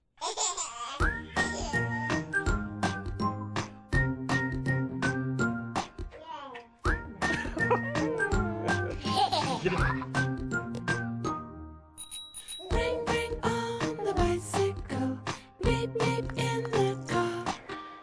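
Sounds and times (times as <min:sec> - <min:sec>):
short baby-like giggles: 0:00.2 - 0:01.9, 0:07.3 - 0:10.0
song with steady instrumental backing and a sung melody: 0:01.1 - 0:06.2, 0:06.9 - 0:11.6, 0:12.6 - 0:18.0.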